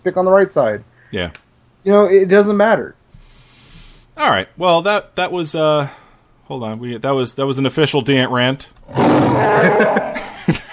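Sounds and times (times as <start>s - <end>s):
speech: 0.0s - 3.0s, 4.2s - 10.6s
loud raspy creature roar sound effect: 8.9s - 10.3s
laughter: 9.4s - 10.7s.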